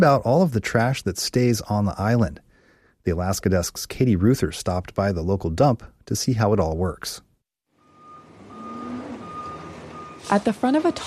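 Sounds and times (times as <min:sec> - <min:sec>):
speech: 0:00.0 - 0:02.4, 0:03.0 - 0:07.3, 0:10.2 - 0:11.0
dump truck engine rumble: 0:07.8 - 0:11.0
dump truck reversing alarm beeping while backing up to a bay door: 0:07.8 - 0:11.0.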